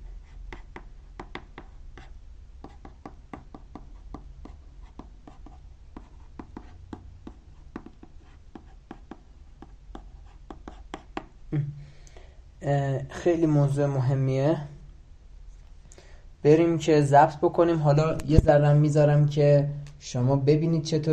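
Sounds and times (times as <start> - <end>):
pen scratching on paper while writing by hand: 0.0 - 11.3
speech: 12.6 - 14.7, 16.5 - 21.1.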